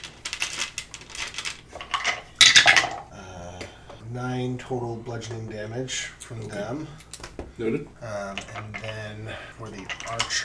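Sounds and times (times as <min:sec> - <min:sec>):
many dice rattling across a table in a tabletop role-playing game: 0:00.0 - 0:03.0, 0:09.7 - 0:10.4
speech: 0:04.1 - 0:10.4.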